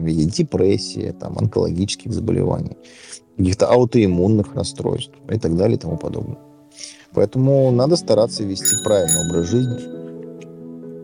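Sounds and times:
speech: 0:00.0 - 0:10.0
bright bell ringing to signal time is up: 0:08.6 - 0:10.1.

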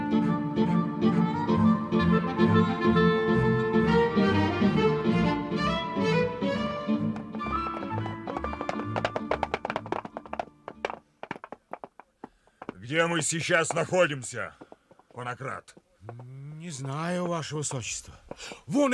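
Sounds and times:
music: 0:00.0 - 0:10.7
horses' hooves clip-clopping: 0:07.0 - 0:18.5
speech: 0:12.9 - 0:14.6, 0:15.2 - 0:18.9.

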